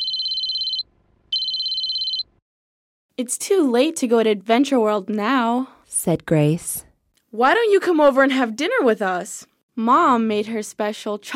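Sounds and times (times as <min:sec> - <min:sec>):
cell phone ringing on outgoing call: 0:00.0 - 0:02.4
speech: 0:03.2 - 0:11.3.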